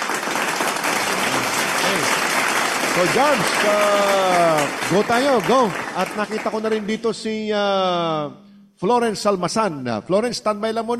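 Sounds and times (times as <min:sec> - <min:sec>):
crowd applause: 0:00.0 - 0:06.9
speech: 0:03.0 - 0:10.9.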